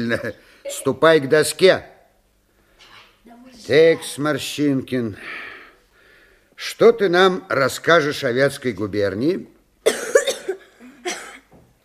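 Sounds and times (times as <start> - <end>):
speech: 0.0 - 1.9, 3.7 - 5.4, 6.6 - 10.0
person coughing harshly: 9.8 - 11.5.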